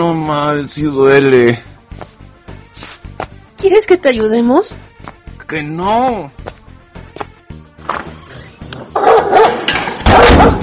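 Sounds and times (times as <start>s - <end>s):
speech: 0.0s - 2.1s, 3.6s - 4.8s, 5.5s - 6.6s
dog barking and yelping: 9.0s - 10.6s.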